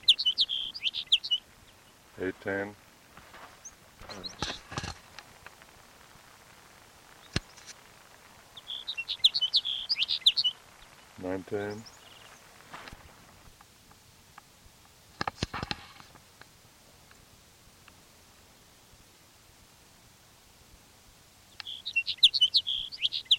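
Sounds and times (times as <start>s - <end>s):
bird song of bright high chirps and twitters: 0.0s - 2.0s, 3.6s - 4.7s, 8.6s - 12.4s, 21.5s - 23.3s
speech: 2.2s - 2.8s, 11.2s - 12.0s.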